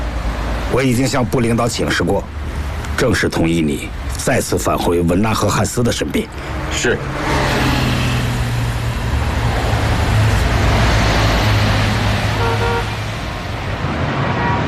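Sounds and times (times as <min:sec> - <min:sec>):
car engine rumbling while driving: 0:00.0 - 0:14.6
loud road noise: 0:00.0 - 0:14.6
speech: 0:00.7 - 0:07.4
drawn-out horn blasts: 0:12.3 - 0:13.0
short higher-pitched honk: 0:12.4 - 0:12.9.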